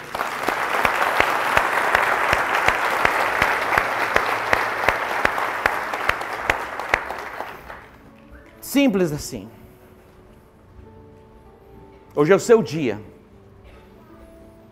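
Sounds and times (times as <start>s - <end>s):
audience applause: 0.0s - 8.0s
sharp evenly spaced claps: 0.0s - 8.6s
speech: 8.7s - 9.6s, 12.2s - 13.1s.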